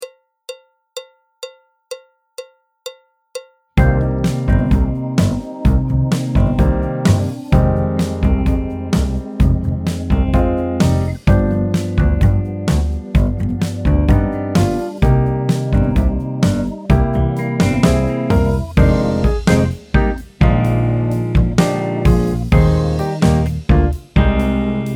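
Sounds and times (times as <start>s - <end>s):
jazz tango backing track: 3.8s - 24.9s.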